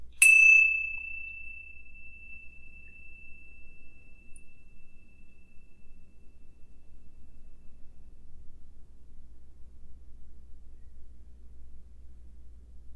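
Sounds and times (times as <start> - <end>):
small meditation bell ringing: 0.2 - 6.9.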